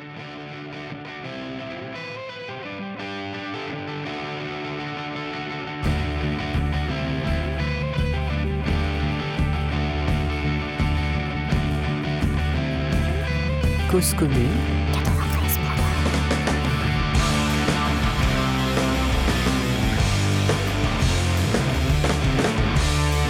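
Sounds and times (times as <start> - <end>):
heavily distorted rock guitars: 0.0 - 23.2
rock bass: 5.7 - 23.2
speech: 13.9 - 14.7
driving rock drums: 15.0 - 23.2.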